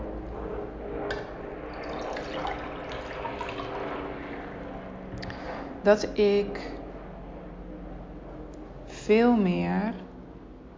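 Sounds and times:
liquid pouring into a small glass: 0:01.7 - 0:05.0
speech: 0:05.8 - 0:06.8, 0:09.1 - 0:10.0.

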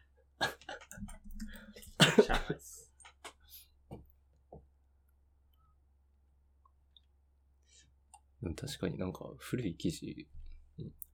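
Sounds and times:
person coughing: 0:01.9 - 0:02.8
speech: 0:02.2 - 0:02.8, 0:08.4 - 0:11.0.

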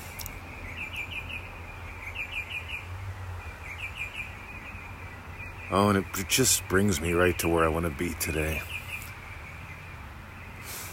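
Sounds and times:
bird chirping outdoors: 0:00.0 - 0:10.9
speech: 0:05.7 - 0:08.7.

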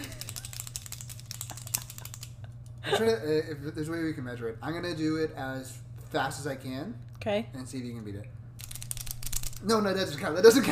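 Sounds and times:
clicky pens clicking: 0:00.0 - 0:02.4, 0:08.6 - 0:09.6
low hum: 0:00.0 - 0:10.7
speech: 0:02.8 - 0:08.4, 0:09.6 - 0:10.7.

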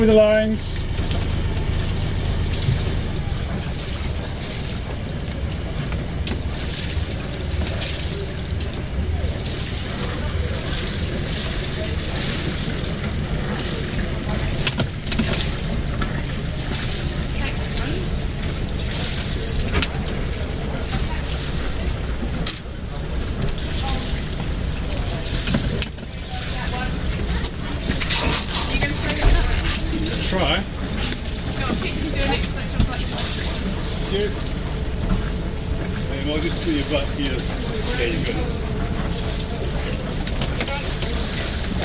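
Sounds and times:
speech: 0:00.0 - 0:01.1
churning water in a canal lock: 0:00.0 - 0:41.8
narrowboat engine rumbling in a canal lock: 0:00.0 - 0:41.8.

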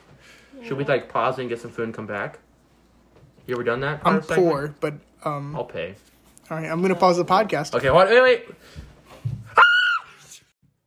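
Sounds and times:
speech: 0:00.6 - 0:02.5, 0:03.5 - 0:08.9
person screaming loudly: 0:09.6 - 0:10.2.

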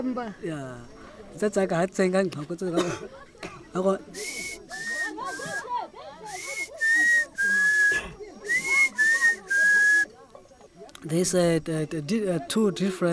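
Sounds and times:
speech: 0:00.0 - 0:04.5, 0:11.0 - 0:13.1
faint voices murmuring: 0:00.0 - 0:13.1
laughter: 0:02.7 - 0:10.0
person whistling imitating a pangolin's song: 0:04.2 - 0:05.6, 0:06.3 - 0:10.0.

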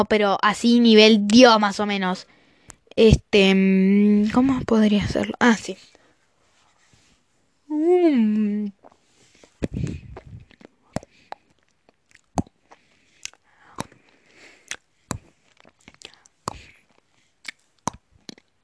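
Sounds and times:
speech: 0:00.0 - 0:02.4, 0:03.0 - 0:06.0, 0:07.7 - 0:08.8, 0:09.7 - 0:10.0
chewing a bite of noodles: 0:10.1 - 0:18.6.

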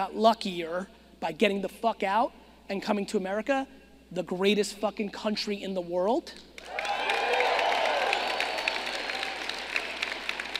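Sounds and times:
speech: 0:00.0 - 0:06.9
whoops and shouting voices: 0:06.6 - 0:09.9
crowd clapping and cheering: 0:06.6 - 0:10.5.

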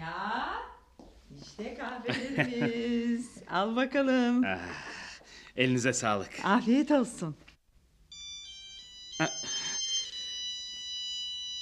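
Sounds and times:
speech: 0:01.5 - 0:05.0, 0:05.6 - 0:07.5, 0:09.2 - 0:09.6
laughter: 0:02.1 - 0:03.2, 0:09.2 - 0:10.0
mobile phone ringing with a steady electronic tone: 0:08.1 - 0:11.6.

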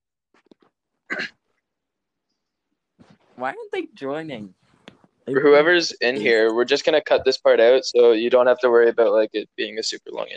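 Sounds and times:
harsh throat clearing: 0:01.1 - 0:01.4
speech: 0:01.2 - 0:01.4, 0:03.4 - 0:04.6, 0:05.3 - 0:10.3.

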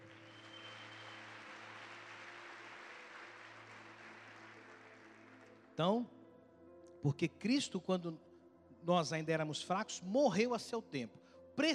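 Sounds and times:
large crowd applauding the King: 0:00.0 - 0:06.0
speech: 0:05.8 - 0:06.2, 0:07.0 - 0:11.7.

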